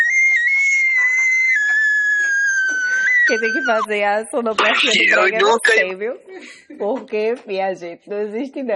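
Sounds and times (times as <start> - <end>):
long high-pitched scream from a person: 0.1 - 3.9, 4.6 - 5.8
speech: 3.3 - 8.7.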